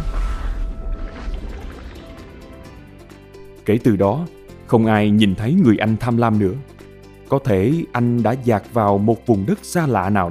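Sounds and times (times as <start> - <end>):
heavy splash of something plunging into the sea: 0.0 - 3.6
churning sea water and scattered drips: 0.0 - 3.7
speech: 3.7 - 6.7, 7.3 - 10.2.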